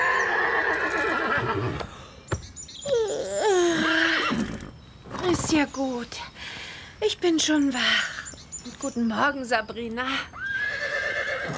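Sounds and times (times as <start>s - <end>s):
horse whinnying loudly: 0.0s - 1.9s, 3.7s - 4.7s, 10.4s - 11.5s
speech: 5.5s - 6.3s, 7.0s - 8.1s, 8.8s - 10.4s.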